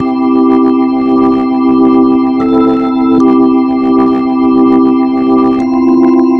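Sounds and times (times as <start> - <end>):
happy reggae chords: 0.0 - 5.6.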